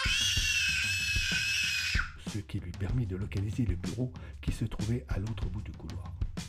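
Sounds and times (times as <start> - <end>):
woman screaming: 0.0 - 2.2
speech: 2.3 - 6.2.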